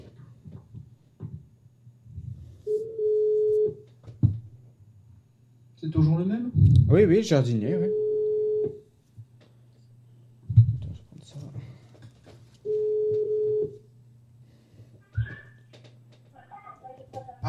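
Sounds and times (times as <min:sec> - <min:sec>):
faint noise: 0:00.0 - 0:17.4
telephone ringback tone while calling back to add someone to a conference call: 0:02.7 - 0:03.8, 0:07.9 - 0:08.8, 0:12.6 - 0:13.8
speech: 0:05.9 - 0:08.0.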